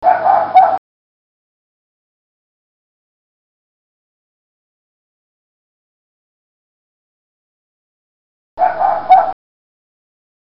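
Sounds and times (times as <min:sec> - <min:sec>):
fox giving short harsh hoarse barks: 0:00.0 - 0:00.8, 0:08.6 - 0:09.4.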